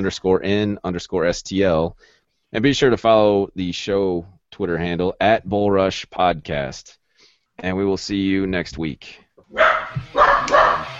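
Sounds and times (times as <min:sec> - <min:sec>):
speech: 0:00.0 - 0:07.0, 0:07.6 - 0:10.6
dog barking: 0:09.5 - 0:10.9.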